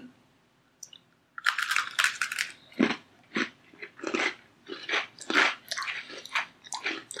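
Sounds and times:
crunching bites of a mint chocolate: 1.4s - 7.1s.

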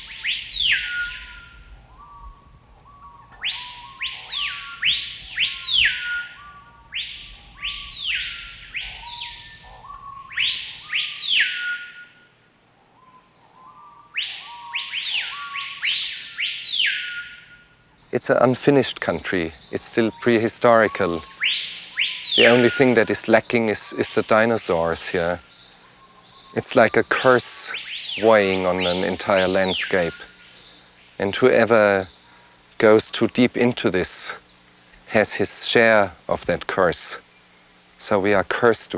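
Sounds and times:
jungle birds screeching: 0.0s - 12.3s, 13.0s - 38.9s
speech: 18.2s - 21.3s, 22.4s - 25.5s, 26.5s - 27.6s, 28.2s - 30.3s, 31.2s - 32.2s, 32.8s - 34.4s, 35.1s - 37.2s, 38.0s - 38.9s.

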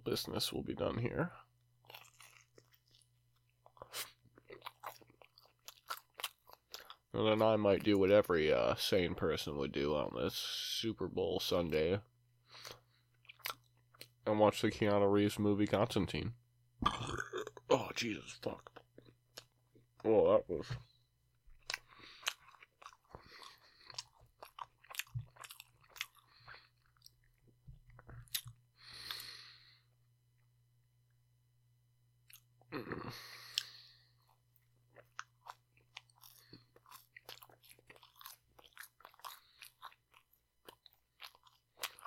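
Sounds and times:
speech: 0.0s - 2.0s, 7.1s - 12.1s, 14.3s - 17.3s, 18.0s - 18.8s, 20.0s - 20.9s, 32.8s - 33.3s
chewing a mouthful of noodles: 1.8s - 7.1s, 12.6s - 14.2s, 21.6s - 29.2s, 33.4s - 42.0s.

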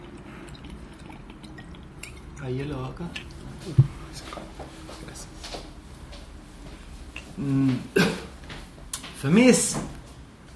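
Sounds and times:
liquid being poured: 0.0s - 4.0s
speech: 2.4s - 5.7s, 7.4s - 8.2s, 9.2s - 10.0s.

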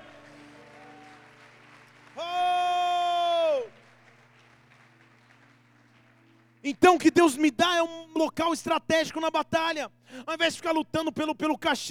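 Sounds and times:
congregation clapping: 0.0s - 7.8s
person shouting: 2.2s - 3.7s
speech: 6.6s - 11.9s.

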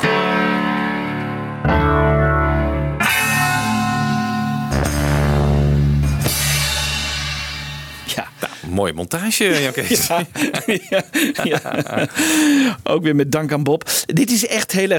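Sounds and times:
piano chord from isolated multitrack recording: 0.0s - 8.1s
tremolo part: 0.0s - 8.5s
drums: 3.0s - 8.7s
laughter: 8.1s - 8.7s, 9.4s - 12.7s
speech: 8.8s - 14.9s.

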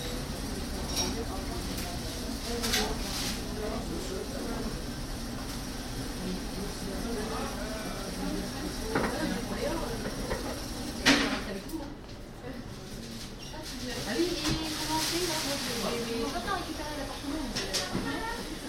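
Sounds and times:
murmur of overlapping voices in a busy bakery: 0.0s - 18.6s.

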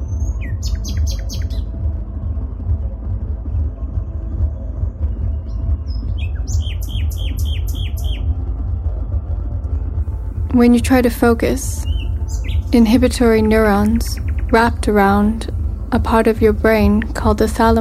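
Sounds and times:
nightingale singing bright bursts of rapid repeated whistling notes: 0.0s - 1.7s, 5.4s - 8.3s, 11.5s - 15.8s
constant low rumbling background: 0.0s - 17.7s
speech: 10.6s - 11.9s, 12.7s - 17.7s.

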